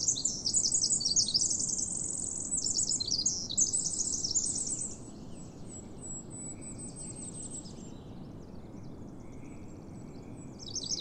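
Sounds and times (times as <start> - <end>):
Pacific wren singing while perched in the open in a national park: 0.0 - 5.0, 10.6 - 10.9
quiet ambient hiss: 0.0 - 10.9.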